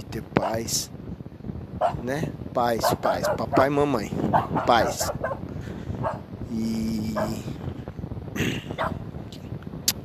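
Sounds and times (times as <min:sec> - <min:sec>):
speech: 0:00.0 - 0:01.0, 0:01.8 - 0:07.7, 0:08.4 - 0:09.0
steady low rumble: 0:00.0 - 0:10.0
dog barking: 0:00.4 - 0:00.7, 0:01.8 - 0:02.1, 0:02.8 - 0:03.7, 0:04.3 - 0:05.4, 0:06.0 - 0:06.2, 0:07.2 - 0:07.4, 0:08.8 - 0:09.0.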